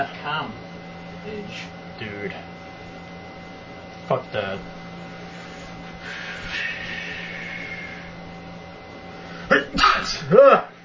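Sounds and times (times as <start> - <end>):
speech: 0.0 - 2.6, 4.1 - 4.8, 9.5 - 10.8
quiet room hum: 0.0 - 10.8
loud sneeze: 9.6 - 10.3.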